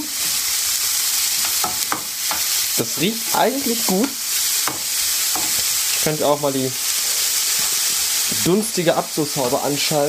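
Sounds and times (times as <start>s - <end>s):
diced bacon cubes sizzling in a hot pan: 0.0s - 10.0s
speech: 2.8s - 4.2s, 6.0s - 6.8s, 8.4s - 10.0s.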